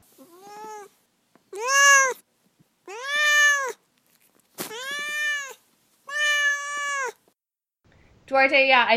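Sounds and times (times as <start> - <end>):
cat meowing: 0.2 - 0.9, 1.5 - 2.2, 2.8 - 3.8, 4.6 - 7.2
speech: 8.3 - 8.9.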